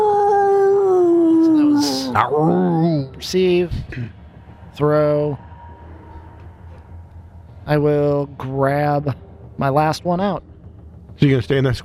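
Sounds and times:
creature howling in pain: 0.0s - 3.2s
speech: 2.2s - 4.2s, 4.8s - 5.5s, 7.7s - 10.5s, 11.2s - 11.8s.

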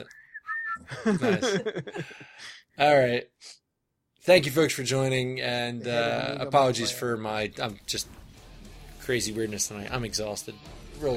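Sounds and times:
speech: 0.0s - 0.2s, 0.8s - 3.6s, 4.2s - 8.2s, 9.1s - 11.1s
whistle blown as a stop signal: 0.0s - 0.9s
laughter: 0.9s - 2.4s.

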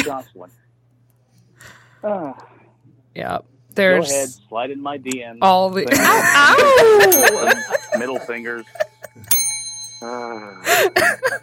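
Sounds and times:
speech: 0.0s - 0.6s, 1.6s - 2.6s, 3.2s - 9.3s, 10.0s - 11.4s
laughter: 5.9s - 9.4s
bicycle bell ringing: 7.0s - 11.4s
person humming a tone: 10.0s - 11.0s.

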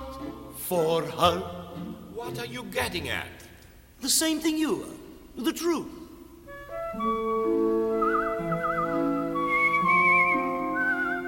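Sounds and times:
sustained music: 0.0s - 4.0s, 6.2s - 11.2s
speech: 0.7s - 3.4s, 4.0s - 6.0s, 6.9s - 7.7s
person whistling a wavering vibrato tune: 6.8s - 11.2s.

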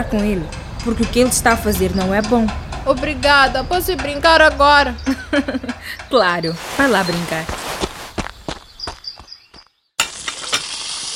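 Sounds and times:
speech: 0.0s - 7.6s
utensil stirring food in a cooking pot: 10.0s - 10.8s.

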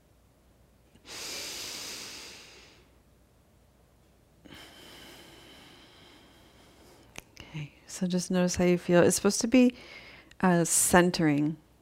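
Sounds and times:
person breathing out deeply during a breathing exercise: 1.0s - 2.9s, 4.5s - 7.1s
speech: 7.6s - 11.6s.

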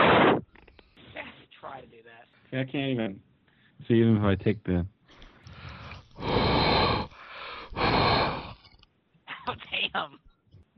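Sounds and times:
speech: 2.5s - 4.9s
breaths blown into a condenser microphone imitating a whoosh: 5.5s - 8.6s.

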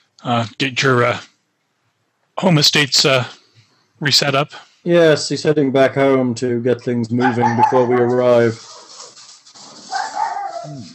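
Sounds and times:
speech: 0.2s - 1.3s, 2.4s - 3.4s, 4.0s - 8.8s
dog yelping: 7.2s - 9.0s, 9.8s - 10.9s.

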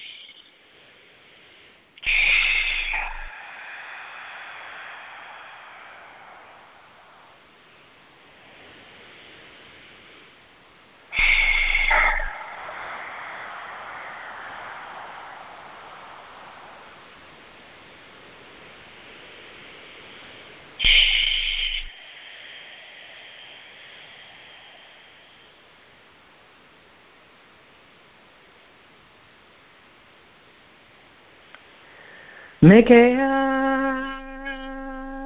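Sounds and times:
long slow deep breaths for centering before meditation: 0.6s - 26.2s, 31.6s - 32.7s
speech: 32.6s - 33.3s.

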